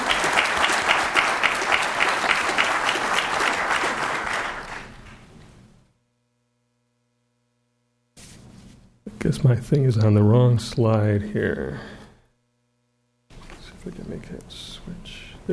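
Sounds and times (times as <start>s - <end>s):
full room of people clapping in a round of applause: 0.0s - 5.3s
speech: 9.3s - 12.0s, 13.8s - 15.5s.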